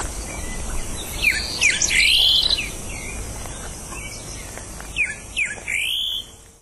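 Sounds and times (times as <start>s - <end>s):
steady background hiss: 0.0s - 6.6s
greyish saltator giving rich whistled notes: 1.2s - 2.7s, 5.0s - 6.3s.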